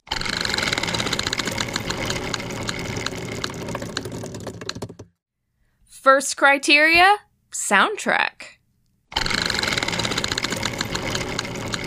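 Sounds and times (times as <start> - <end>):
spinning wheel of chance clicking: 0.1 - 5.1, 9.2 - 11.8
speech: 6.0 - 8.3.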